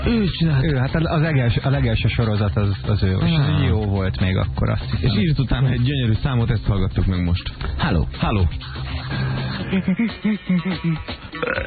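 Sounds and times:
speech: 0.0 - 11.6
burp sound effect scratched like a DJ record: 10.8 - 11.6.

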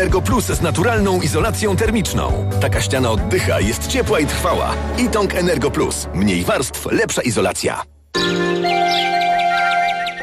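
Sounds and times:
speech: 0.0 - 8.4
sustained tonal music: 2.3 - 6.8, 8.2 - 10.2
sparrows chirping in the morning: 8.2 - 10.2.

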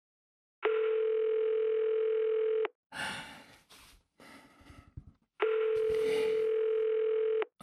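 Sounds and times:
telephone ringing tone: 0.7 - 2.7, 5.4 - 7.5.

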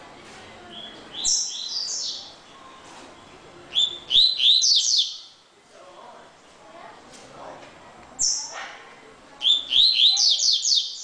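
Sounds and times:
double-collared seedeater song: 0.7 - 5.4, 8.2 - 8.6, 9.4 - 11.0.

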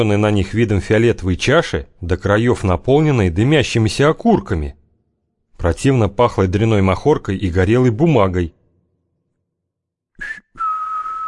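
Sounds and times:
speech: 0.0 - 4.8, 5.6 - 8.6
person whistling: 10.2 - 11.2.

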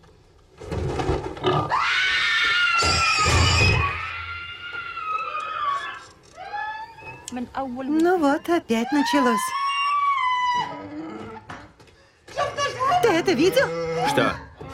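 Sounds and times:
pig squealing: 1.4 - 7.3, 8.2 - 11.6, 12.6 - 14.7
speech: 7.6 - 9.6, 13.3 - 14.5
pig grunting: 10.6 - 11.7, 12.9 - 14.7.

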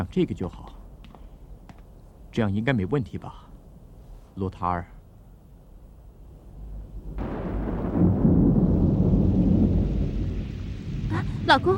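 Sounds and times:
speech: 0.0 - 0.8, 2.4 - 3.4, 4.4 - 4.9, 11.4 - 11.7
rolling thunder from an approaching storm: 6.5 - 11.7.

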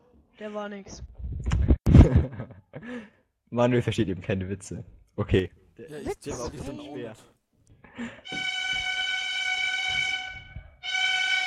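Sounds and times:
speech: 0.4 - 1.2, 2.0 - 7.3, 8.0 - 8.5
strange whistles with harmonically rich blasts: 8.3 - 11.4.

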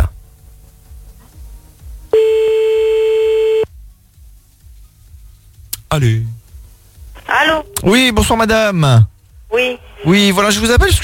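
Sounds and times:
telephone ringback tone on an outgoing call: 2.2 - 3.7
speech: 5.9 - 6.4, 7.3 - 11.0.

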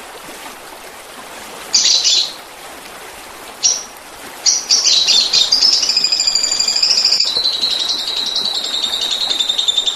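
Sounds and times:
Oriental magpie-robin singing high, scratchy warbled phrases: 4.5 - 9.9.

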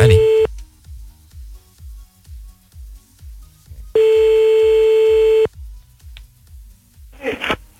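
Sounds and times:
bright buzzy telephone ringback tone as a call is placed back: 0.0 - 0.5, 4.0 - 5.5.

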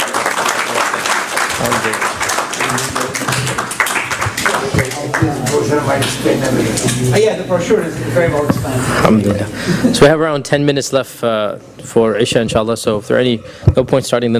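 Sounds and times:
audience applause after a lecture: 0.0 - 5.6
speech: 1.6 - 3.8, 4.6 - 14.3.

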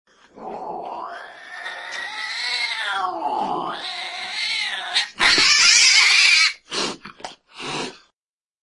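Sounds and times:
pet domestic cat giving a long wailing meow: 1.0 - 6.6.

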